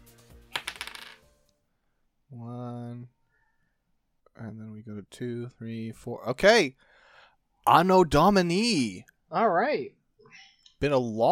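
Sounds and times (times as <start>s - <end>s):
dice clattering on a hard surface: 0.5s - 1.3s
speech: 2.3s - 2.6s, 4.4s - 7.0s, 7.6s - 11.3s.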